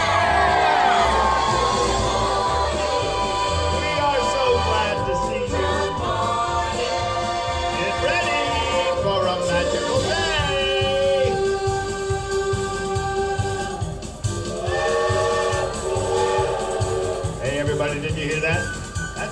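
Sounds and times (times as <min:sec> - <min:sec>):
steam train rhythmic chugging: 0:00.0 - 0:19.2
steam train whistle: 0:14.6 - 0:17.3.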